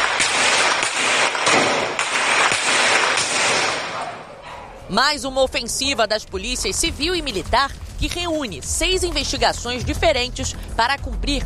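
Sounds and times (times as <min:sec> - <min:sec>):
gunfire bursts during police operation: 0:00.0 - 0:04.3
speech: 0:04.9 - 0:11.4.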